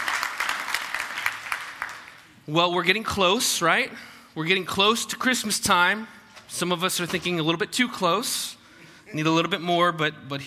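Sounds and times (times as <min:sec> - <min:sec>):
church audience applauding: 0:00.0 - 0:02.3
speech: 0:02.5 - 0:10.4.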